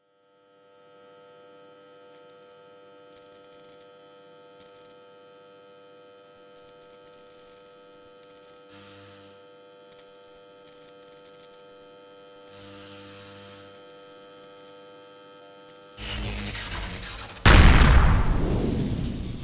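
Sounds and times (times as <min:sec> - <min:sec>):
transformer explosion: 0:16.0 - 0:19.4.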